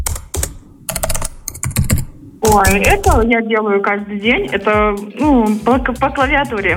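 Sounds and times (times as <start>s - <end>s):
fingers typing on a computer keyboard: 0.0s - 3.2s
speech: 2.4s - 6.7s.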